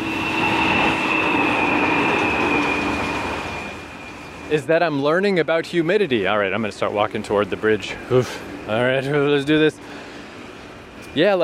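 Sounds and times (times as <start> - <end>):
high squealing tone of a passing train: 0.0 - 5.2
train passing: 0.0 - 11.4
speech: 4.5 - 10.0, 11.1 - 11.4.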